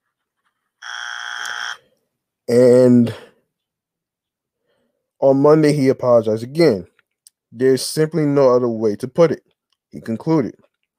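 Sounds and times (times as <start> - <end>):
electronic buzzer: 0.8 - 1.8
speech: 2.5 - 3.2, 5.2 - 6.9, 7.5 - 10.6.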